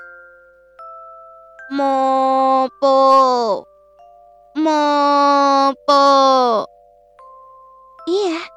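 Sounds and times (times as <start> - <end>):
voice imitating the call of a bird with a lame leg: 1.7 - 3.6, 4.6 - 6.7, 8.1 - 8.5
speech: 1.7 - 3.7, 4.6 - 6.7.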